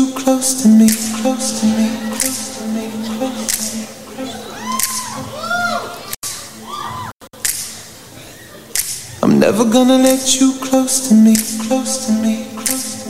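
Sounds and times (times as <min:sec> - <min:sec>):
sung melody in a live room: 0:00.0 - 0:05.1, 0:09.7 - 0:13.0
speech: 0:00.4 - 0:03.6, 0:09.5 - 0:12.5
audience snapping fingers in rhythm: 0:00.8 - 0:01.2, 0:02.2 - 0:02.5, 0:03.4 - 0:03.8, 0:04.8 - 0:05.1, 0:07.4 - 0:07.8, 0:08.8 - 0:09.0, 0:11.4 - 0:11.7, 0:12.6 - 0:12.9.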